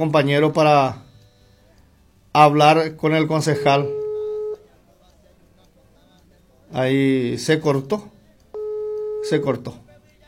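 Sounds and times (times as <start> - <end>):
speech: 0.0 - 1.0, 2.3 - 4.0, 6.7 - 8.1, 9.2 - 9.8
telephone ringing tone on a call: 3.4 - 4.6, 8.6 - 9.6.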